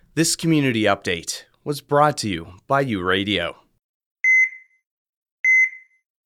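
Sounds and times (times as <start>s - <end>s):
speech: 0.2s - 3.6s
hospital alarm beeping with electronic double-pulse tone: 5.4s - 6.0s.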